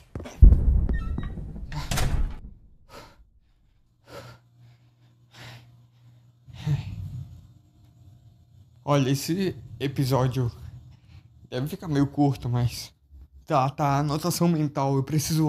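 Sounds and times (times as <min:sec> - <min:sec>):
door swinging shut with a heavy thud and brief rattle: 0:00.2 - 0:02.9
speech: 0:08.9 - 0:10.6, 0:11.5 - 0:15.4.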